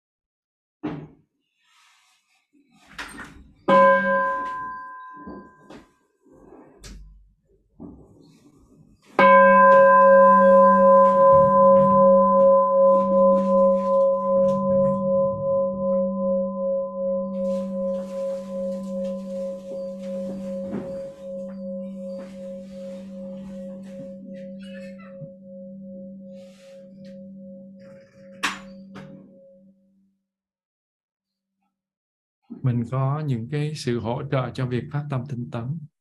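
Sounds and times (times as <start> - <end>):
meditation bell struck firmly and ringing out: 3.7 - 5.8, 9.2 - 29.9
speech: 32.9 - 35.9.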